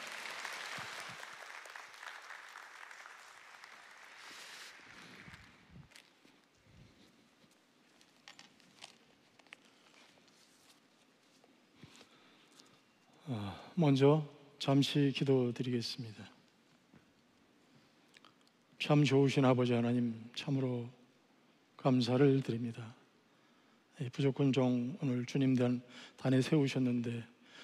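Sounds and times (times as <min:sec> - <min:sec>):
audience applauding to welcome missionary: 0:00.0 - 0:05.7
shuffling: 0:04.6 - 0:12.2
speech: 0:13.3 - 0:16.4, 0:18.9 - 0:21.0, 0:21.8 - 0:23.0, 0:24.0 - 0:27.6.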